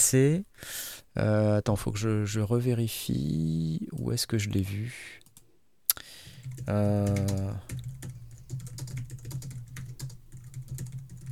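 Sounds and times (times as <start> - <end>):
speech: 0.1 - 5.2, 6.4 - 7.9
fast typing on a computer keyboard: 6.3 - 11.3.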